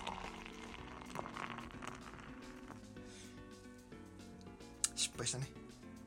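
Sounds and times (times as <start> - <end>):
beer pouring into a glass and foaming: 0.0 - 2.8
quiet music: 0.0 - 6.0
speech: 5.2 - 5.7.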